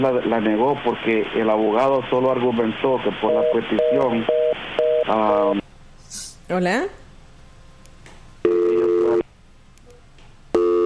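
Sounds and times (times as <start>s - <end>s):
speech: 0.0s - 4.4s, 5.1s - 5.6s, 6.5s - 7.0s
busy tone after a dropped phone call: 3.2s - 5.6s, 8.5s - 9.2s, 10.6s - 10.8s.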